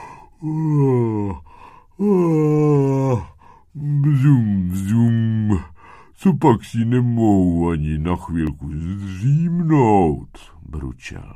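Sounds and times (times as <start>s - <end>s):
person yawning: 0.0s - 5.7s
speech: 0.4s - 2.6s, 6.2s - 11.3s.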